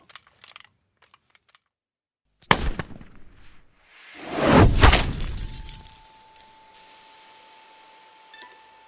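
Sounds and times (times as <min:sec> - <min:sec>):
gunshot: 0:02.5 - 0:05.8
car window glass shattering from bullet: 0:04.7 - 0:06.9
falling glass shards tinkling: 0:05.1 - 0:07.1.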